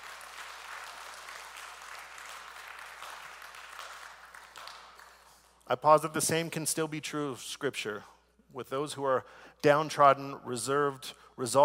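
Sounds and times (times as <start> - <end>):
crowd applause: 0.0 - 5.2
speech: 5.7 - 11.6.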